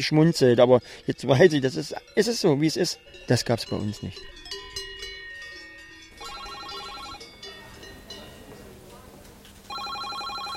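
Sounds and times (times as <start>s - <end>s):
speech: 0.0s - 4.5s
second phone trilling in an open-plan office: 6.2s - 7.2s, 9.7s - 10.5s
telephone bell ringing in a Swiss construction staffing agency office: 6.2s - 7.3s, 9.7s - 10.5s
murmur of chatter in an open-plan office: 7.4s - 10.0s.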